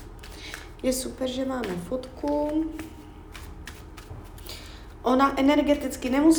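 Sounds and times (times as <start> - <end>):
tarot cards shuffling for a card reading: 0.0 - 5.0
speech: 0.8 - 3.0, 5.0 - 6.3.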